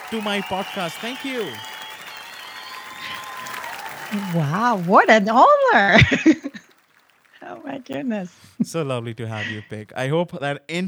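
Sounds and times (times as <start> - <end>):
laughter: 0.0 - 6.8
crowd applause: 0.0 - 8.6
speech: 0.1 - 1.7, 4.1 - 6.7, 7.6 - 10.8.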